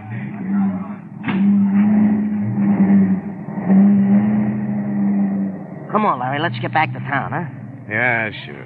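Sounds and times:
car engines rumbling as vehicles start up and pull away: 0.0s - 8.6s
sharp thump: 1.2s - 2.0s
speech: 6.0s - 8.6s.

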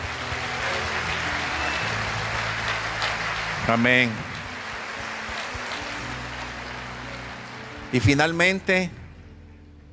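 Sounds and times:
audience applauding: 0.0s - 8.7s
speech: 3.7s - 4.3s, 7.9s - 9.0s.

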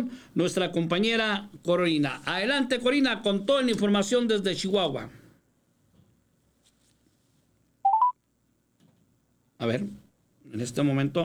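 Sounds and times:
speech: 0.0s - 5.2s, 9.6s - 11.2s
telephone keypad tones redialing a call: 7.9s - 8.1s.

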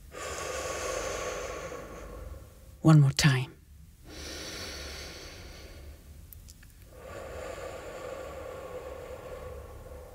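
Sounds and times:
slow deliberate breath during a guided breathing exercise: 0.0s - 2.8s, 4.0s - 6.1s, 6.9s - 10.1s
speech: 2.8s - 3.6s.

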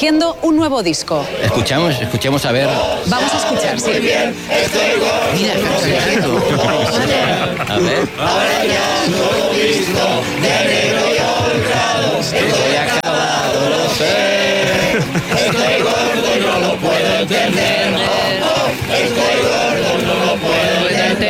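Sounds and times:
speech: 0.0s - 21.2s
crowd of hundreds singing songs in a city street: 0.1s - 21.2s
laughter: 1.2s - 21.2s.

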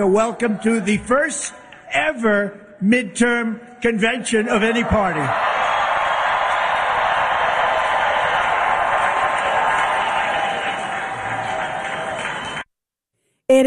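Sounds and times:
large crowd roaring and cheering in a big convention hall: 0.0s - 1.7s, 4.4s - 12.7s
speech: 0.0s - 5.5s.

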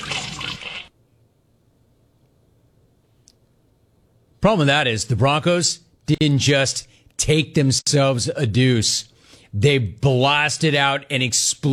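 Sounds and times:
toilet flushing: 0.0s - 0.9s
speech: 4.4s - 11.7s.

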